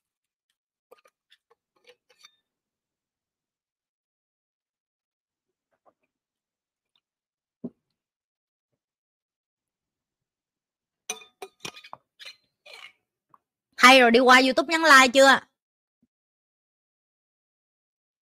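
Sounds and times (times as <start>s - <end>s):
glass of water clinking while handled and set down: 11.1s - 11.9s
speech: 13.9s - 15.5s.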